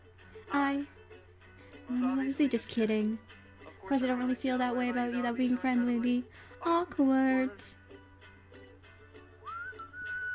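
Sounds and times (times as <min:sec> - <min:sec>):
speech: 0:00.5 - 0:01.0, 0:01.9 - 0:07.8
person attempting to whistle: 0:09.5 - 0:10.3.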